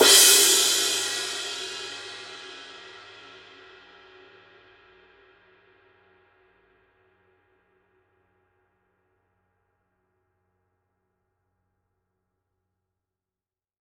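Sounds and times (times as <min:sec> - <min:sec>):
bronze crash cymbal hit on edge: 0:00.0 - 0:03.3.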